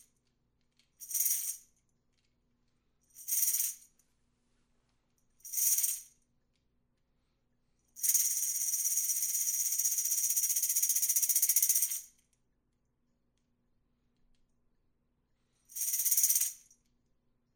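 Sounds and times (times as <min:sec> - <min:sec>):
large tambourine roll: 0:01.0 - 0:01.7, 0:03.1 - 0:04.0, 0:05.4 - 0:06.1, 0:08.0 - 0:12.1, 0:15.7 - 0:16.8.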